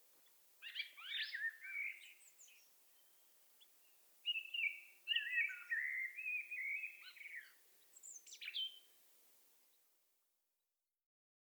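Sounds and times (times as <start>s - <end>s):
common blackbird Turdus merula singing: 0.6s - 2.7s, 4.2s - 8.8s.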